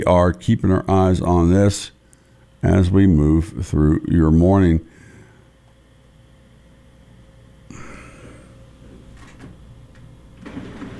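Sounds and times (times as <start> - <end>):
speech: 0.0 - 2.0, 2.6 - 5.0
printer running with a steady mechanical hum: 10.4 - 10.9.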